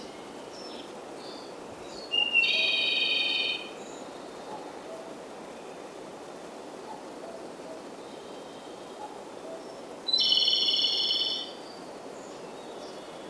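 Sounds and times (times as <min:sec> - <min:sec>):
Japanese robin singing: 0:00.0 - 0:04.7, 0:08.0 - 0:13.2
soft background hiss: 0:00.0 - 0:13.2.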